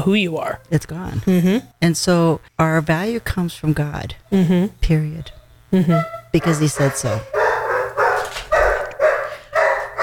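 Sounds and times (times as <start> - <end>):
speech: 0.0 - 7.4
basset hound barking: 6.0 - 10.0.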